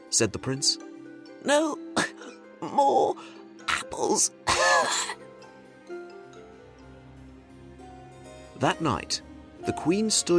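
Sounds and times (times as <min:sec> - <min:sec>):
speech: 0:00.1 - 0:05.3, 0:08.6 - 0:10.3
woman coughing harshly: 0:04.5 - 0:05.2.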